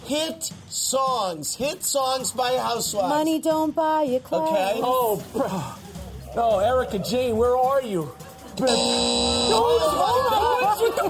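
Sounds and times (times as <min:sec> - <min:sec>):
speech: 0:00.1 - 0:11.0
several people talking over one another: 0:01.6 - 0:11.0
laughter: 0:08.3 - 0:11.0
harsh game-show buzzer: 0:08.6 - 0:10.2.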